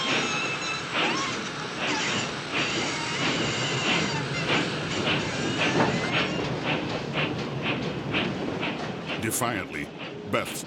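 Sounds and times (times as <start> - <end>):
train rumble and hiss while pulling away along the rails: 0.1 - 10.6
speech: 9.4 - 10.6.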